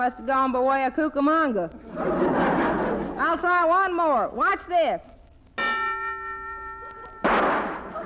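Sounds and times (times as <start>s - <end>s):
speech: 0.0s - 2.4s, 3.2s - 5.1s
metallic ring: 5.6s - 7.8s
gun going off: 7.2s - 7.9s.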